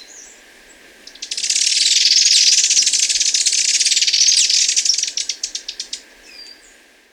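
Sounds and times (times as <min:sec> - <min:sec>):
superciliaried hemispingus loud buzzy chatter in Ecuador: 0:01.1 - 0:06.0.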